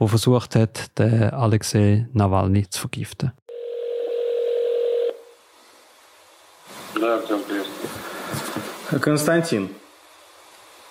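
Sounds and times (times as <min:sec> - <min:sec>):
speech: 0:00.0 - 0:03.4, 0:07.0 - 0:09.8
steady electronic telephone dialing tone: 0:03.5 - 0:05.3
man speaking over the phone line during a prank call: 0:07.0 - 0:07.9.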